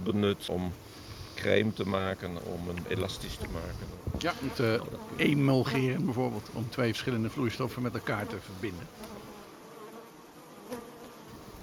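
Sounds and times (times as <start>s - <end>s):
speech: 0.0s - 9.2s
honeybees buzzing around honey: 0.0s - 11.6s.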